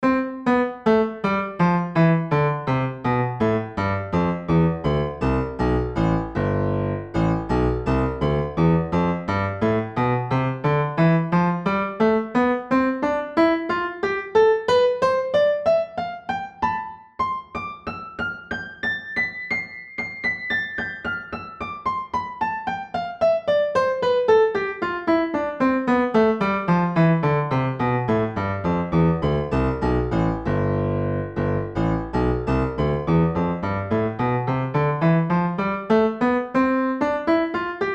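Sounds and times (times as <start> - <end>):
piano software woof sound: 0.0 - 37.9.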